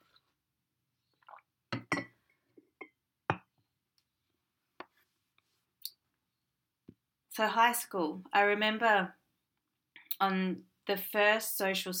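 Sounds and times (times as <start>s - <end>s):
light cup clinks: 1.7s - 2.2s
speech: 7.4s - 9.2s, 10.2s - 11.9s.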